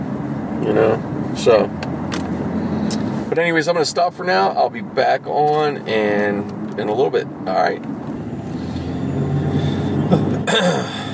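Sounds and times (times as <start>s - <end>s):
steady low engine-like rumble: 0.0s - 11.1s
speech: 0.6s - 1.9s, 3.3s - 8.0s, 10.6s - 11.0s
person coughing harshly: 10.0s - 11.1s.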